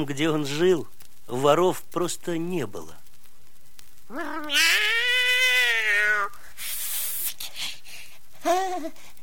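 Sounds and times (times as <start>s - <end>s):
speech: 0.0s - 3.0s, 4.1s - 5.0s, 8.4s - 9.1s
breathy noise: 3.7s - 9.2s
cat meowing: 4.1s - 6.4s.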